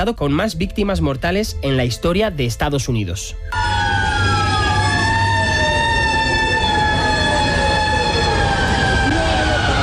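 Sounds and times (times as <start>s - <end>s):
speech: 0.0s - 4.0s
emergency vehicle sirens wailing in city streets: 3.5s - 9.8s
dense rumble of traffic and engine noise: 3.6s - 9.8s.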